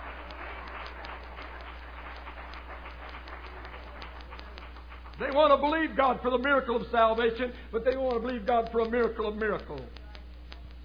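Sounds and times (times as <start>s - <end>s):
crowd clapping at a religious gathering: 0.0s - 6.6s
faint low hum: 0.0s - 10.8s
speech: 5.2s - 10.0s.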